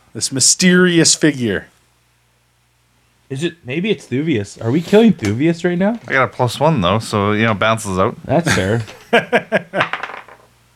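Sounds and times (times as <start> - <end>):
speech: 0.2 - 1.8, 3.3 - 9.9
laughter: 8.4 - 9.9
dice clattering across a hard table: 9.8 - 10.5.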